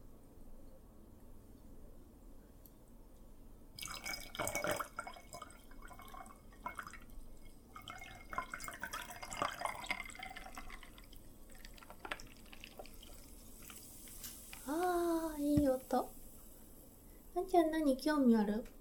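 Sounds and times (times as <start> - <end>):
low hiss: 0.0 - 18.7
sparkling water poured from a freshly opened bottle into a glass: 3.8 - 18.2
speech: 17.5 - 18.7.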